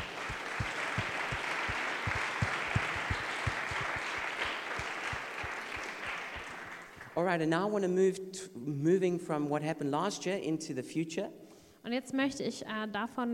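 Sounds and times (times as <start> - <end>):
crowd applauding: 0.0 - 7.2
speech: 7.2 - 13.3.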